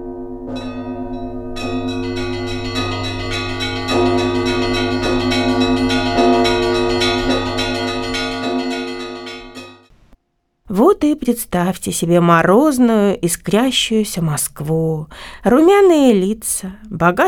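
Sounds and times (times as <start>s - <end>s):
Russian church bells ringing for Christmas: 0.0s - 9.9s
speech: 11.2s - 17.2s.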